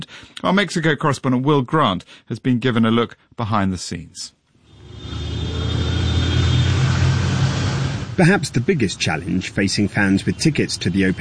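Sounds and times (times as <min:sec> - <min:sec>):
speech: 0:00.0 - 0:04.4, 0:08.2 - 0:11.2
car passing: 0:04.6 - 0:11.2
city road traffic rumble with engines droning: 0:04.6 - 0:11.2.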